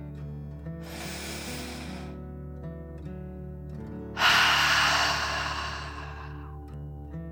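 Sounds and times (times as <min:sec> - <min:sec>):
deep breath out during a guided breathing exercise: 0:00.8 - 0:02.2, 0:04.2 - 0:06.6.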